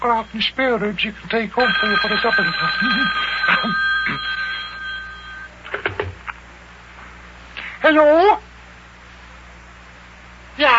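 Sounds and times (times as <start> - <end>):
speech: 0.0 - 4.3, 7.9 - 8.4
telephone bell ringing: 1.6 - 5.5.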